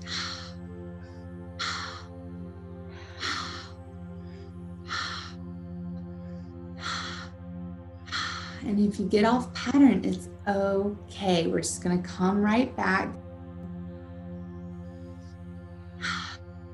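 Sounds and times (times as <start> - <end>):
forceful rhythmic breathwork inhales and exhales: 0.0 - 8.6, 16.0 - 16.5
low sustained musical drone: 0.0 - 16.7
speech: 8.6 - 13.2.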